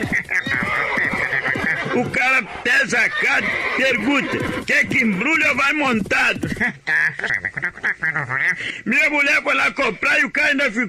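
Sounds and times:
horse neighing: 0.0 - 6.5
laughter: 0.0 - 8.9
speech: 2.0 - 10.8.

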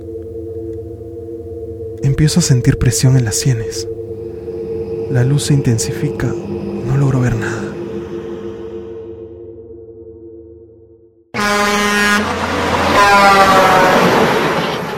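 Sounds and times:
low steady engine drone: 0.0 - 14.9
speech: 2.0 - 4.0, 5.1 - 7.7
very loud truck horn blaring: 11.4 - 14.9.

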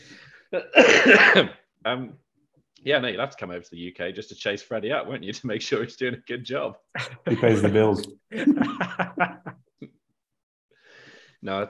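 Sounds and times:
speech: 0.5 - 2.2, 2.8 - 9.9, 11.4 - 11.6
harsh raspy coughing fit: 0.6 - 1.7
laughter: 7.0 - 9.6.

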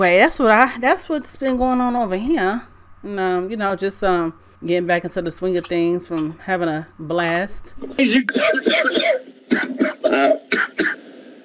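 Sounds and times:
speech: 0.0 - 11.0
person coughing in a harsh raspy fit: 8.0 - 11.0.

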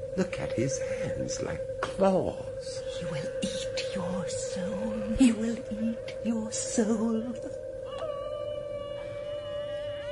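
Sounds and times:
speech: 0.2 - 7.6
wolf howling: 7.8 - 10.0.

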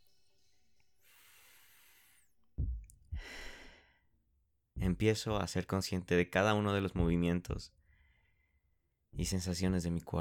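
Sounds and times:
slow deep breathing during meditation: 1.0 - 4.1, 7.8 - 8.6
speech: 4.9 - 7.8, 9.2 - 10.1.

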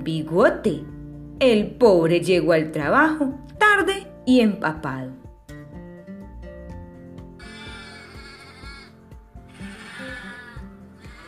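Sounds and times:
speech: 0.0 - 5.2
rhythmic musical backing with soft knocking beats: 0.0 - 11.2
sheep bleating: 7.4 - 11.2.

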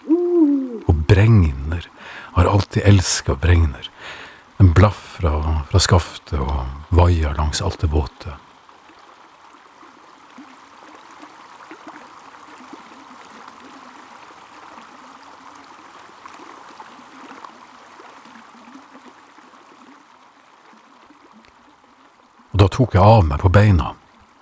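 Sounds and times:
swollen stream rushing along spruce roots in a wood: 0.0 - 8.4
speech: 1.1 - 1.8, 2.4 - 8.4, 22.7 - 24.0.

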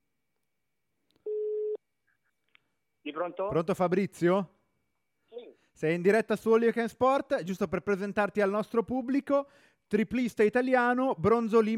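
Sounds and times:
telephone ringing tone of an outgoing call: 1.3 - 1.8
speech: 3.2 - 4.6, 5.8 - 11.7.

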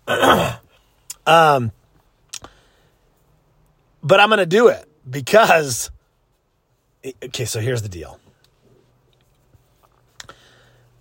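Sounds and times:
person coughing: 0.0 - 0.7
speech: 1.3 - 1.8, 4.0 - 6.0, 7.0 - 8.2.

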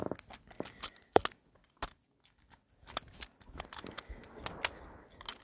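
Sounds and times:
poker chips clicking and clacking together for ASMR: 0.2 - 5.4.

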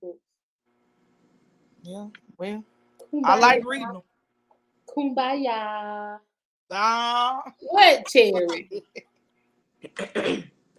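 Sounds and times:
speech: 1.9 - 4.1, 5.0 - 9.1, 9.8 - 10.5
person clearing throat with harsh rasp: 9.9 - 10.5.

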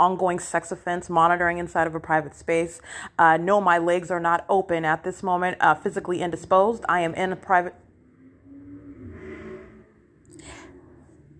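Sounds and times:
speech: 0.0 - 7.8
car engine revving: 7.8 - 11.3.

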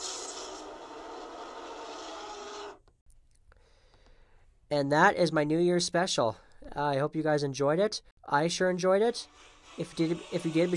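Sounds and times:
dragon-style fire breath sound effect: 0.0 - 2.8
speech: 4.7 - 10.7.

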